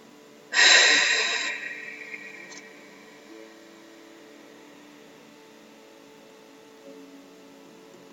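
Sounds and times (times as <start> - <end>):
forceful breath out through the nose or mouth: 0.5 - 3.0.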